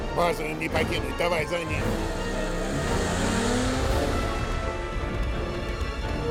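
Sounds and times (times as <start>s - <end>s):
speech: 0.2s - 2.3s
car engine revving and driving off: 1.7s - 6.2s.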